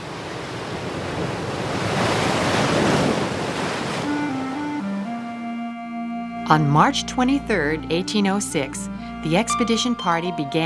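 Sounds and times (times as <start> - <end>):
Pacific Ocean surf washing ashore: 0.0 - 5.4
soft sustained musical notes: 4.0 - 10.6
speech: 6.5 - 10.6.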